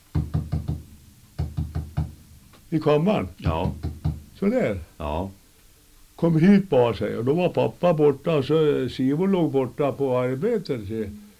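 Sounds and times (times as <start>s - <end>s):
firm knocking on a hard surface imitating a window knock: 0.1s - 2.7s, 3.4s - 4.4s
speech: 2.7s - 5.4s, 6.2s - 11.2s.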